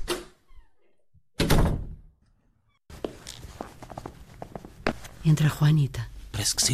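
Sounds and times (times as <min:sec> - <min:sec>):
door opening with a sharp clack and heavy thunk: 0:01.4 - 0:02.0
speech: 0:05.2 - 0:06.7.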